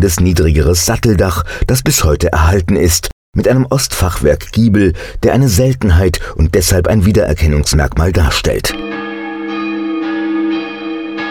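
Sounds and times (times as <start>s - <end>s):
speech: 0.0s - 9.0s
church bells ringing, two cast in 1651 and a larger one from 1816: 8.8s - 11.2s.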